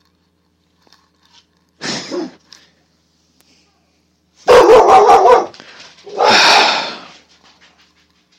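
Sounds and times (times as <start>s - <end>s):
dog barking: 4.4s - 6.7s.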